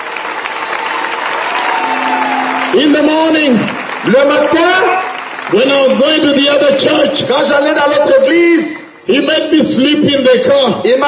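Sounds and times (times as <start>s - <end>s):
church congregation clapping in praise: 0.0s - 8.3s
speech: 2.7s - 11.0s.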